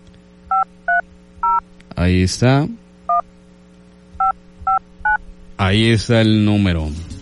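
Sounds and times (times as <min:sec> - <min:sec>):
touch-tone telephone keypad dialing beeps: 0:00.5 - 0:01.6
voice: 0:01.9 - 0:02.8, 0:05.6 - 0:07.2.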